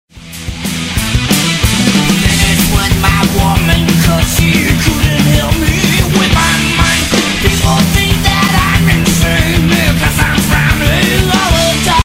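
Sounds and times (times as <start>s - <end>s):
hard techno music: 0.4s - 12.0s.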